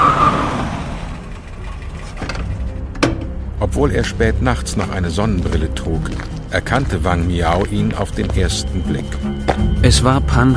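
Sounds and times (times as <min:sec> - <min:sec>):
car engine low roar as the car rolls up: 0:00.0 - 0:05.8
speech: 0:03.7 - 0:10.5.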